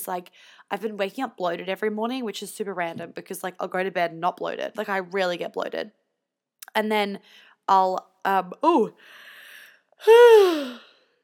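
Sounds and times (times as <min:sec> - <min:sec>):
speech: 0:00.0 - 0:06.0, 0:06.8 - 0:09.2, 0:10.0 - 0:10.9
person yawning: 0:10.0 - 0:10.9.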